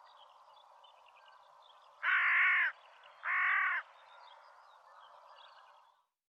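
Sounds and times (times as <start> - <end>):
Corvus corone carrion crow cawing: 2.0 - 3.9.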